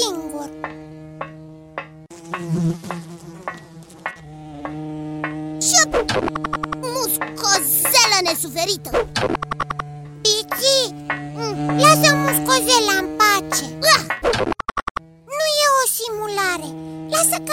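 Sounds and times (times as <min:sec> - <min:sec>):
fly buzzing: 0:00.0 - 0:17.5.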